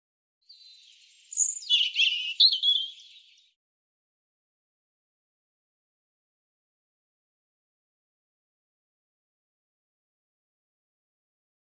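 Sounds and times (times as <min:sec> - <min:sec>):
European robin singing: 0:00.5 - 0:03.6.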